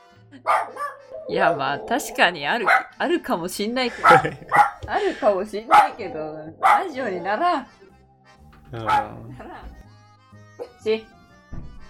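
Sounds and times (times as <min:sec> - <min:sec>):
dog barking: 0:00.4 - 0:01.6, 0:02.6 - 0:03.0, 0:03.9 - 0:04.9, 0:05.7 - 0:07.0, 0:08.8 - 0:09.4
speech: 0:00.4 - 0:07.8, 0:08.7 - 0:09.5, 0:10.8 - 0:11.1
dog yipping: 0:00.5 - 0:01.4, 0:02.6 - 0:02.9, 0:04.0 - 0:04.8, 0:05.7 - 0:06.0, 0:06.6 - 0:06.9, 0:08.8 - 0:09.2
people chatting: 0:01.3 - 0:04.3, 0:04.9 - 0:07.6, 0:08.8 - 0:09.6
laughter: 0:03.8 - 0:05.4.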